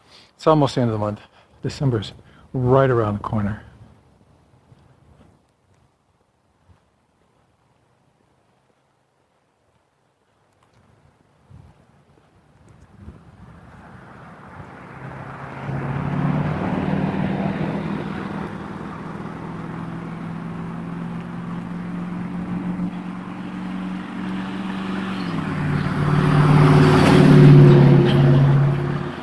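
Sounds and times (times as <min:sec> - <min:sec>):
speech: 0:00.4 - 0:03.7
heavy truck engines rumbling while passing: 0:13.4 - 0:29.2.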